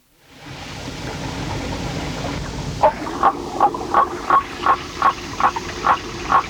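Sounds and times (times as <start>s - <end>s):
steady rushing water: 0.4s - 6.4s
waterfall frog Litoria nannotis croaking: 2.8s - 6.4s.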